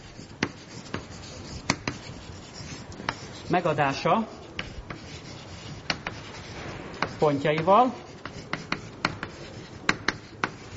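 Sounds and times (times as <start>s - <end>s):
scratchy writing on a board during a lecture: 0.0s - 10.7s
speech: 3.5s - 4.4s, 7.2s - 8.0s.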